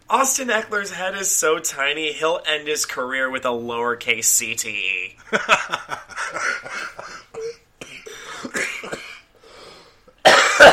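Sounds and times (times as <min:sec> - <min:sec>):
speech: 0:00.1 - 0:06.8
laughter: 0:05.2 - 0:07.3
harsh raspy smoker's cough: 0:06.3 - 0:09.6, 0:10.2 - 0:10.7.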